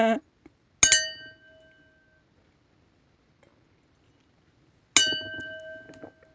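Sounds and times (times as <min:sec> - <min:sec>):
crystal wine glasses clinking: 0:00.8 - 0:01.8, 0:05.0 - 0:06.2.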